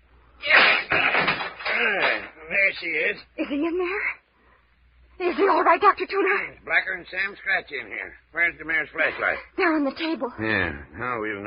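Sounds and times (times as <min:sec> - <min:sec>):
banging and rattling: 0:00.4 - 0:02.4
heavy locked door battered with a chair: 0:00.4 - 0:02.4
speech: 0:01.8 - 0:04.2, 0:05.2 - 0:11.4.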